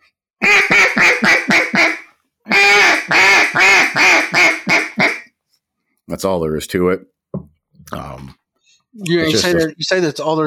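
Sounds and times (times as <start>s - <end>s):
duck call blown in a lonesome hen sequence: 0.4s - 5.4s
speech: 6.2s - 7.2s, 9.0s - 10.4s.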